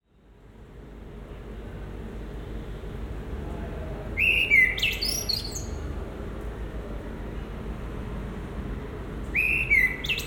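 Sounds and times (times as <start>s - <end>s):
steady low background noise: 0.0s - 10.2s
common blackbird singing in the Marolles district of Brussels: 4.2s - 5.8s, 9.4s - 10.2s.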